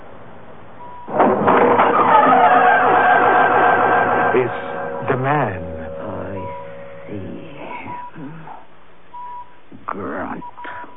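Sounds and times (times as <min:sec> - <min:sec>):
heavy door in a stone corridor creaking open: 0:01.1 - 0:07.2
speech: 0:04.4 - 0:04.6.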